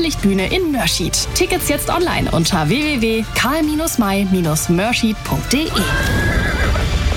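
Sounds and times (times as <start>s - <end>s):
speech: 0.0s - 6.4s
horse neighing: 5.7s - 7.0s.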